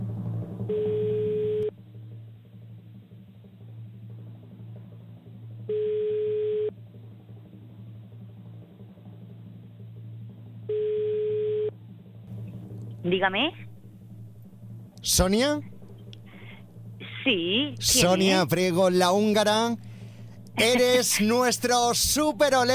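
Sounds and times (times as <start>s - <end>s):
low hum: 0.0s - 22.7s
telephone ringback tone heard through the line: 10.7s - 11.7s
speech: 13.2s - 13.6s, 15.0s - 15.7s, 17.3s - 19.9s, 20.6s - 22.7s.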